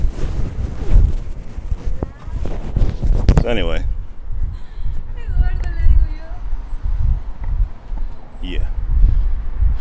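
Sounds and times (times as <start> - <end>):
clothing rubbing against a field recorder in a coat pocket: 0.0 - 3.6
low rumbling thumps: 0.0 - 9.7.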